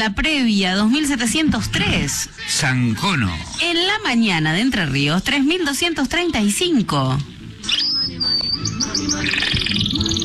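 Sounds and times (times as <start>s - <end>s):
speech: 0.0s - 10.2s
birds chirping and tweeting: 7.1s - 10.2s.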